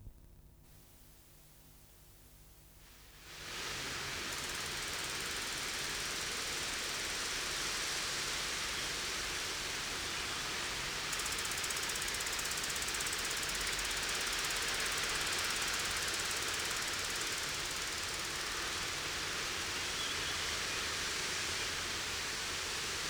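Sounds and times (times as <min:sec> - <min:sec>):
Cicada orni: 0:03.4 - 0:22.9.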